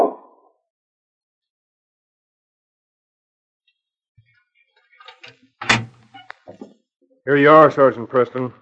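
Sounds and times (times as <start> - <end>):
small metallic clicks and rattles of a lock: 5.0 - 6.6
door clunking and scraping as it swings open: 5.0 - 6.7
speech: 7.2 - 8.6.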